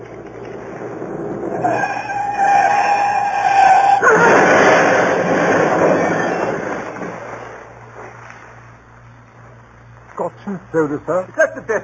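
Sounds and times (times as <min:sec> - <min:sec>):
car tyres screeching in a skid: 0:01.5 - 0:07.5
speech: 0:10.8 - 0:11.8.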